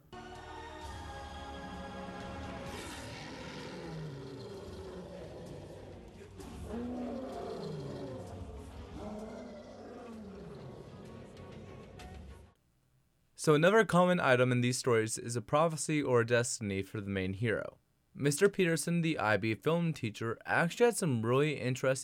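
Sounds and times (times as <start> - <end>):
lion roaring: 2.6 - 12.0
speech: 13.4 - 22.0.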